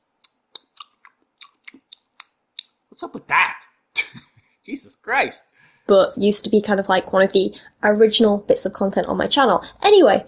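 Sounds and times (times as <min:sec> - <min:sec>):
lip smacks: 0:00.0 - 0:02.9
speech: 0:03.0 - 0:10.2.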